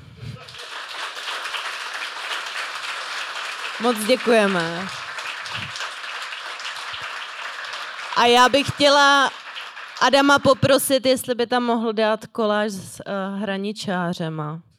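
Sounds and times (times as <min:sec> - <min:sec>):
audience applauding: 0:00.4 - 0:10.9
speech: 0:03.8 - 0:05.0, 0:08.2 - 0:09.4, 0:10.0 - 0:14.7.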